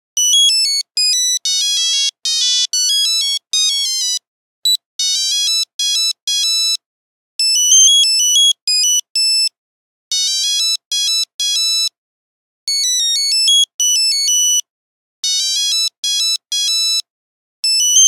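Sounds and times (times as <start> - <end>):
Nokia 8310 mobile phone buzzer ringtone melody: 0.2 - 4.2, 5.0 - 6.8, 7.4 - 9.5, 10.1 - 11.9, 12.7 - 14.6, 15.2 - 17.0, 17.6 - 18.0.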